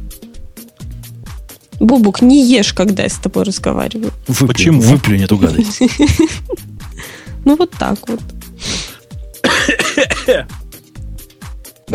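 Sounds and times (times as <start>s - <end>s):
speech: 1.8s - 8.4s, 10.0s - 10.6s
laughter: 5.6s - 6.6s
cluster of loud harsh coughs: 8.9s - 10.6s.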